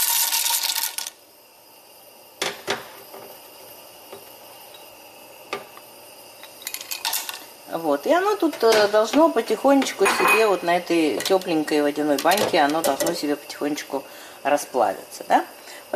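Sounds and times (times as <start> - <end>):
small hard pieces of cocoa butter poured into a metal pot: 0.0 - 1.2, 6.6 - 7.5
speech: 7.7 - 15.9.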